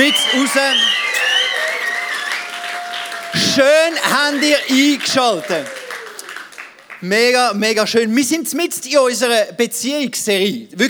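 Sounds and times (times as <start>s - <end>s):
speech: 0.0s - 1.1s, 3.6s - 5.8s, 7.0s - 10.8s
high sliding whoops or whistles from an audience: 0.0s - 3.6s, 5.4s - 6.5s
audience applauding: 0.0s - 7.4s.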